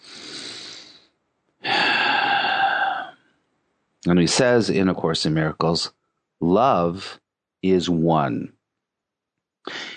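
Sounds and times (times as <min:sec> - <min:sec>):
deep breath during a guided meditation: 0:00.0 - 0:03.3, 0:09.7 - 0:09.9
speech: 0:04.0 - 0:08.6.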